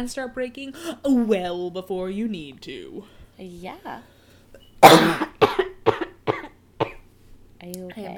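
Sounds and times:
speech: 0.0s - 4.1s, 7.6s - 8.1s
harsh coughing fit: 4.8s - 7.1s.

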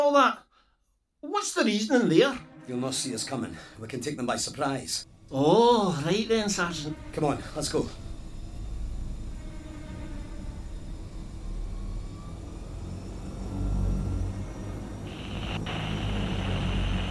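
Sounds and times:
speech: 0.1s - 0.4s, 1.2s - 8.0s
bright hissing tone: 4.5s - 17.0s
heavy airplane engine drone: 5.1s - 17.0s.

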